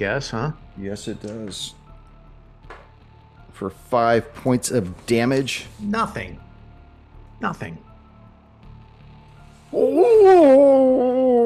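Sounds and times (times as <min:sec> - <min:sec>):
speech: 0:00.0 - 0:01.8, 0:03.6 - 0:06.4, 0:07.4 - 0:07.9, 0:09.7 - 0:10.7
person imitating a wolf howl during a tabletop role-playing game: 0:09.7 - 0:11.4.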